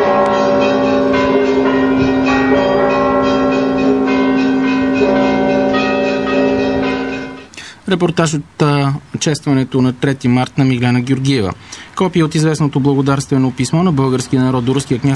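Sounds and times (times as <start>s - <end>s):
church bells pealing for national holiday celebration: 0.0s - 7.5s
speech: 7.9s - 15.1s.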